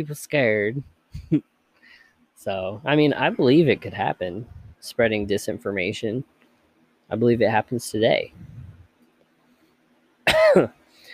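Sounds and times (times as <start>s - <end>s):
speech: 0.0s - 1.5s, 2.4s - 6.4s, 7.1s - 8.5s, 10.3s - 10.8s
cough from a tickle in the throat: 10.2s - 11.1s.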